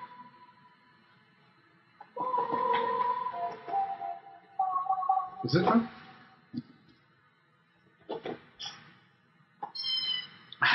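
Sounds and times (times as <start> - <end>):
processed sound with heavy added reverb and echo effects: 0.0 - 6.8
steady electronic tone: 2.1 - 6.3
speech: 5.4 - 6.7.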